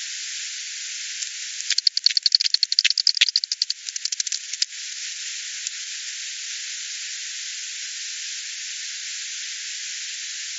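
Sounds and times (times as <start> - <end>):
steady hiss: 0.0 - 10.5
bat clicks: 1.6 - 4.7.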